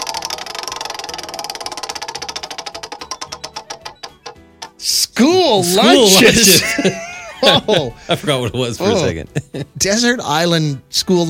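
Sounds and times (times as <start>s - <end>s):
prize wheel spun to pick a game category, ticking: 0.0s - 4.9s
speech: 4.8s - 11.2s
laughter: 5.7s - 9.9s.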